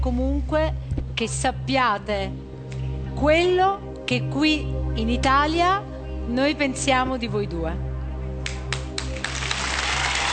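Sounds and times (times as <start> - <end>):
speech: 0.1 - 2.5, 3.2 - 7.9
audience applause: 8.7 - 10.3.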